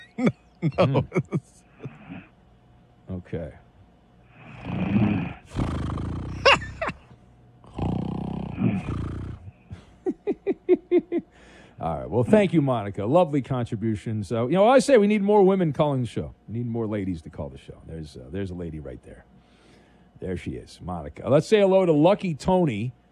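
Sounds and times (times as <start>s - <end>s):
laughter: 0.0s - 2.1s, 6.4s - 7.1s, 9.7s - 11.3s
speech: 0.2s - 1.6s, 3.1s - 3.6s, 11.8s - 19.3s, 20.2s - 23.0s
loud rasping snoring: 4.4s - 6.9s, 7.7s - 9.5s.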